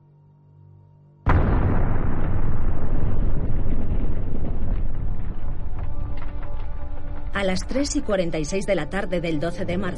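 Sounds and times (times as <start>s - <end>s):
huge explosion at nuclear reactor building: 1.3s - 7.4s
speech: 7.4s - 9.9s.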